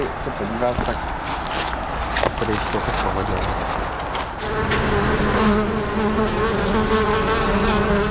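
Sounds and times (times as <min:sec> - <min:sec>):
speech: 0:00.2 - 0:01.2, 0:02.4 - 0:03.7, 0:04.5 - 0:08.0
many honeybees buzzing around an apiary: 0:02.6 - 0:08.0.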